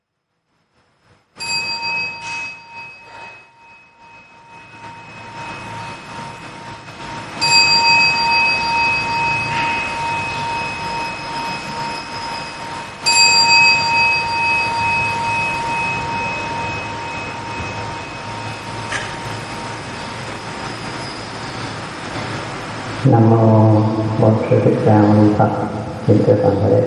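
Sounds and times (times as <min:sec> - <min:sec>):
meditation bell strikes: 0:01.4 - 0:22.4
speech: 0:23.2 - 0:26.8.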